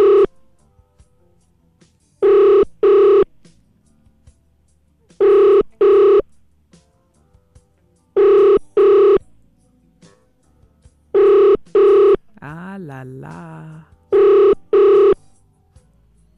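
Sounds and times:
telephone ringing tone on unanswered call heard from the caller's end: 0:00.0 - 0:00.4, 0:02.2 - 0:03.3, 0:05.2 - 0:06.3, 0:08.2 - 0:09.2, 0:11.2 - 0:12.2, 0:14.1 - 0:15.2
speech: 0:13.0 - 0:14.0.

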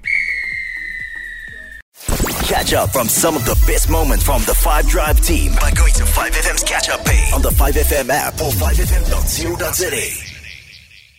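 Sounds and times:
referee's whistle blast blown to signal the end of play: 0:00.0 - 0:01.8
speech: 0:02.5 - 0:10.3.

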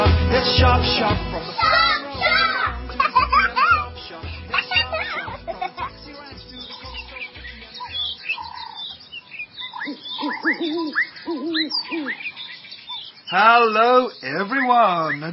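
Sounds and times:
birds chirping chorus: 0:01.0 - 0:15.3
laughter: 0:01.6 - 0:07.8, 0:09.9 - 0:12.2
hoot-like bird calls: 0:06.6 - 0:13.2
speech: 0:13.4 - 0:15.3.

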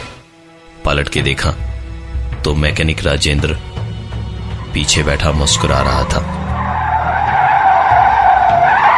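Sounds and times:
speech: 0:00.8 - 0:01.7, 0:02.4 - 0:03.8, 0:04.7 - 0:06.4
car tire screeching while skidding to a halt: 0:04.4 - 0:08.9.

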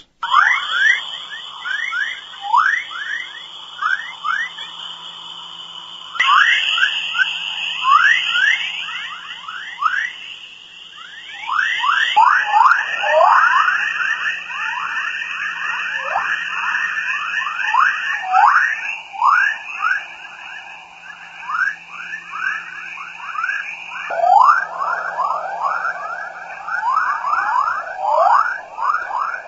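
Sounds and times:
Van Allen belt whistles and chirps recorded by satellites: 0:00.0 - 0:29.4
steady high tone: 0:00.0 - 0:29.4.

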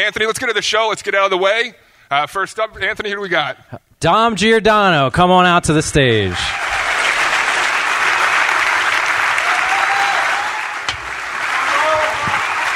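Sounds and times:
speech: 0:00.0 - 0:06.6
large crowd applauding: 0:06.4 - 0:12.7
whistles and cheers: 0:06.4 - 0:12.7.

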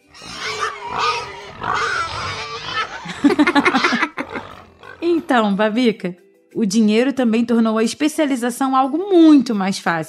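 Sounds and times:
pig squealing and grunting: 0:00.0 - 0:05.5
laughter: 0:02.4 - 0:05.3
speech: 0:05.3 - 0:10.0.

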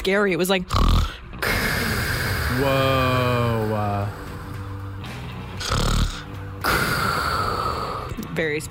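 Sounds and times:
speech: 0:00.0 - 0:01.1, 0:02.5 - 0:04.2, 0:08.4 - 0:08.6
man snoring: 0:00.7 - 0:08.2.

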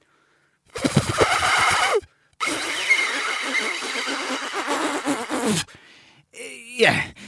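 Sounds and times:
raspy buzzing from blowing through a paper drinking straw: 0:01.2 - 0:05.6
speech: 0:06.8 - 0:07.1.

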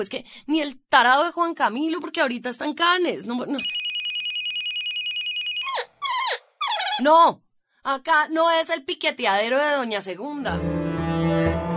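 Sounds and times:
speech: 0:00.0 - 0:03.8, 0:07.0 - 0:10.8
cell phone ringing: 0:03.6 - 0:07.0.

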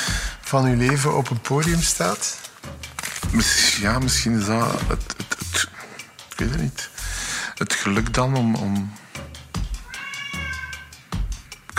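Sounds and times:
speech: 0:00.5 - 0:02.5, 0:03.3 - 0:05.7, 0:06.4 - 0:06.9, 0:07.6 - 0:09.0
cat meowing loudly: 0:09.8 - 0:11.0.

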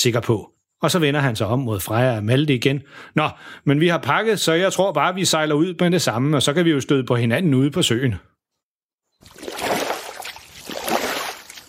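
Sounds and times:
speech: 0:00.0 - 0:08.3
oars rowing a boat on a lake: 0:09.2 - 0:11.6.

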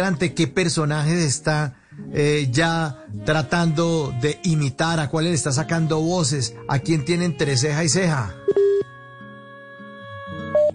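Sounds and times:
speech: 0:00.0 - 0:08.7
electronic telephone beeps on a dropped call: 0:08.5 - 0:08.9, 0:10.5 - 0:10.7.

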